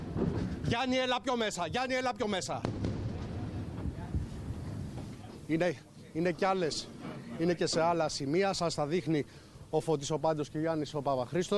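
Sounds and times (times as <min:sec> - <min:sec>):
speech: 0:00.2 - 0:02.9, 0:05.5 - 0:11.5
explosions at sea: 0:02.6 - 0:05.2
faint voices murmuring: 0:02.7 - 0:08.2.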